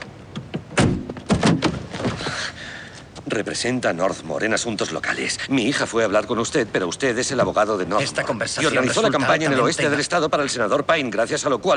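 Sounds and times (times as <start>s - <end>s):
car door being opened with a latch click: 0.0s - 2.5s
dull thunks and handling noises: 0.0s - 2.5s
speech: 3.3s - 11.7s.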